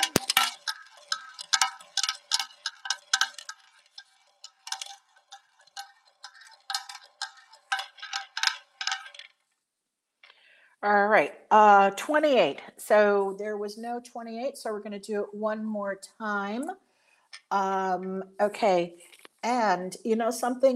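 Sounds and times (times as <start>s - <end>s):
spinning prize wheel clicking: 0.0s - 9.3s
speech: 10.8s - 16.8s, 17.5s - 20.7s.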